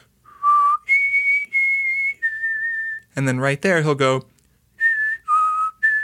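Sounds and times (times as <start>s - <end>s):
exhaled whistled melody: 0.3s - 3.1s, 4.8s - 6.0s
speech: 3.2s - 4.3s.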